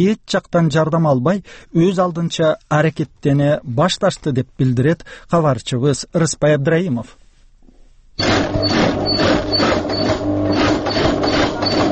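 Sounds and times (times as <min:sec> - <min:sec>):
speech: 0:00.0 - 0:07.2
sewing machine stitching trousers: 0:08.2 - 0:11.9.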